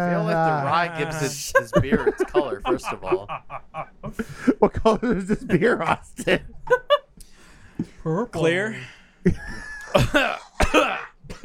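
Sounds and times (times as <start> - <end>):
speech: 0.0 - 6.8, 8.0 - 11.4
laughter: 0.0 - 7.1, 9.3 - 10.4
person coughing into a microphone: 9.8 - 11.4.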